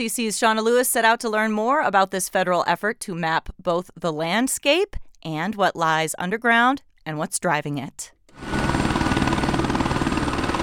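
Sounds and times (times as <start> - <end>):
speech: 0.0 - 8.5
helicopter rotor throbbing during takeoff from a small airport: 8.4 - 10.6.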